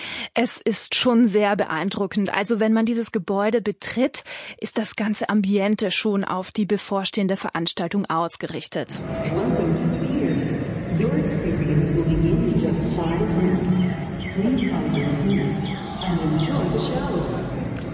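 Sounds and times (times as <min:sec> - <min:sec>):
speech: 0:00.4 - 0:10.0
birds chirping: 0:09.0 - 0:17.9
murmuring voices and bustle: 0:09.0 - 0:17.9.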